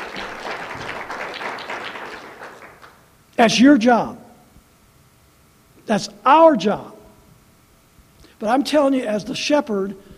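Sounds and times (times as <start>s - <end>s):
church congregation clapping: 0.0s - 3.1s
speech: 3.4s - 4.2s, 5.9s - 7.0s, 8.4s - 10.1s.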